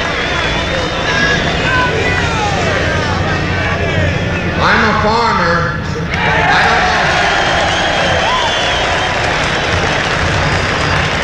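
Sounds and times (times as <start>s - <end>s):
scattered shouts in a crowd: 0.0s - 9.7s
crowd of young people on a farm cheering: 0.0s - 11.2s
crowd clapping: 7.3s - 11.2s.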